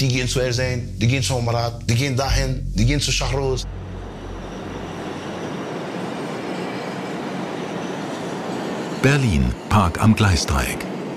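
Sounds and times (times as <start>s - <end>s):
speech: 0.0s - 3.8s, 9.0s - 10.9s
yellow U-Bahn subway trains passing at Park am Gleisdreieck in Berlin: 3.6s - 11.1s.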